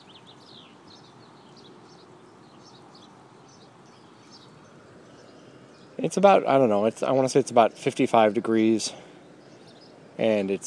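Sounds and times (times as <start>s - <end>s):
several birds chirping: 0.0s - 10.6s
steady broadband hiss: 0.0s - 10.6s
speech: 6.0s - 9.1s, 10.2s - 10.6s.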